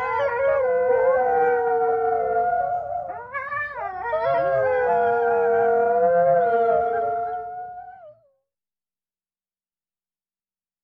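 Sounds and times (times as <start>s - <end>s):
several coyotes howling at night: 0.0s - 8.0s.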